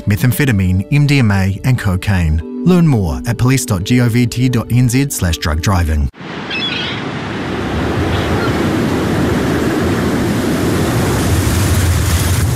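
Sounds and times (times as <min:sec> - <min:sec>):
speech: 0:00.1 - 0:06.6
churning waves on open water: 0:06.2 - 0:12.5
roaring winter wind over open water: 0:06.2 - 0:12.5.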